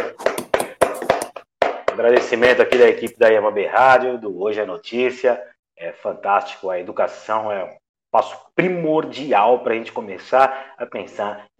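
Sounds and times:
sharp hand claps: 0.0s - 2.3s
speech: 2.0s - 11.5s.

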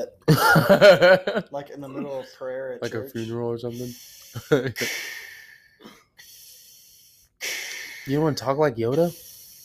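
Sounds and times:
speech: 0.0s - 6.0s, 7.4s - 9.3s
voice imitating heavy mask-like respirator breathing: 3.1s - 8.3s, 9.0s - 9.6s.

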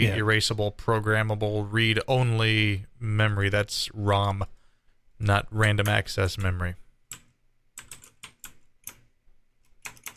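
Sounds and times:
speech: 0.0s - 4.6s, 5.2s - 6.8s
typing on a mechanical keyboard: 7.1s - 9.1s, 9.7s - 10.1s.

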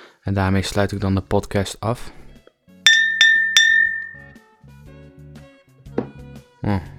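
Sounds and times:
speech: 0.2s - 2.2s, 6.6s - 6.9s
softer scattered glassy taps: 2.9s - 4.3s
glass clinking against another glass: 2.9s - 4.4s.

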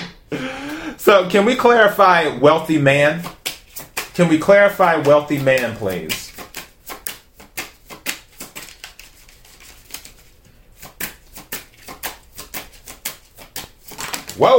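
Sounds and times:
speech: 0.3s - 3.4s, 4.2s - 6.2s, 14.4s - 14.5s
tarot cards being shuffled and scattering: 3.2s - 14.4s.

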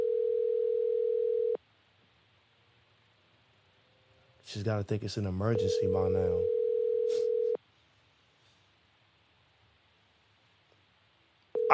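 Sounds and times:
steady telephone dial tone while an unanswered call is placed: 0.0s - 1.6s, 6.4s - 7.6s
speech: 4.5s - 6.6s.

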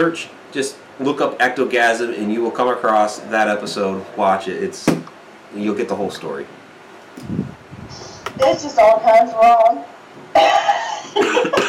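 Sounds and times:
speech: 0.0s - 6.6s, 7.2s - 7.5s, 8.4s - 11.6s
person coughing after laughter: 10.4s - 11.6s.

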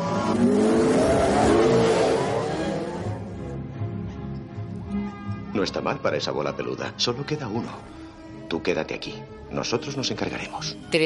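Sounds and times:
speeder bikes roaring off at full throttle: 0.0s - 3.4s
speech: 5.6s - 11.0s.

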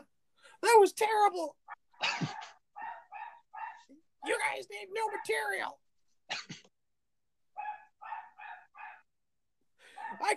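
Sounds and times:
speech: 0.6s - 2.3s, 4.2s - 5.8s, 10.1s - 10.3s
dog barking: 1.7s - 4.0s, 5.0s - 5.6s, 7.6s - 9.1s, 9.9s - 10.3s.

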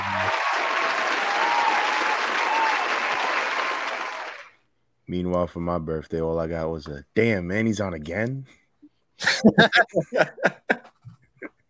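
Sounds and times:
crowd applause: 0.0s - 4.5s
speech: 5.1s - 8.6s, 9.4s - 10.8s
laughter: 9.2s - 11.6s.

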